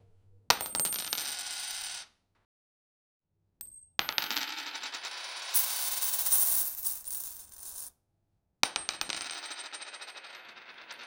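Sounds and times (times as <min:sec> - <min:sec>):
coins dropping on floor: 0:00.5 - 0:02.0, 0:03.6 - 0:07.9, 0:08.6 - 0:11.0.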